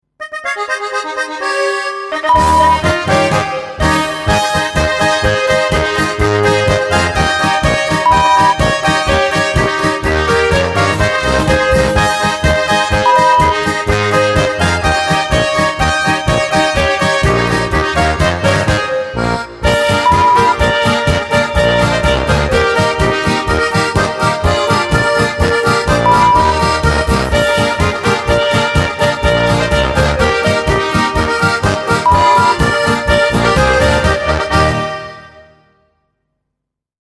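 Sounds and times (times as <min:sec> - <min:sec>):
polka music: 0:00.2 - 0:35.8.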